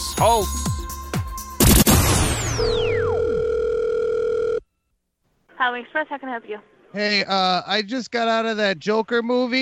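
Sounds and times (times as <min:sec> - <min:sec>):
speech: 0:00.2 - 0:00.7, 0:05.6 - 0:09.5
loud crashing burst: 0:01.6 - 0:03.1
electronic telephone line tone: 0:02.7 - 0:04.6.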